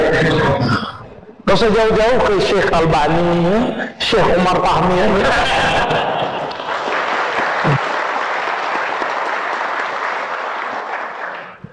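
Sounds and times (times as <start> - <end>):
speech: 1.5 - 6.3
laughter: 5.1 - 8.0
audience applauding: 5.7 - 11.7.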